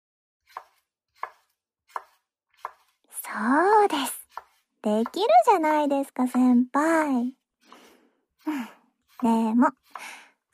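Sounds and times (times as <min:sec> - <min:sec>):
kitchen knife chopping food on a cutting board: 0:00.4 - 0:03.0, 0:04.2 - 0:05.4, 0:09.0 - 0:10.1
speech: 0:03.3 - 0:04.2, 0:04.8 - 0:07.4, 0:08.4 - 0:10.5.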